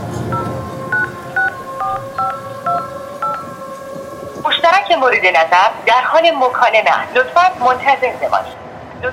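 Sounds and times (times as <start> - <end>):
telephone keypad dialing beeps: 0.3 - 3.5
speech: 5.0 - 9.1.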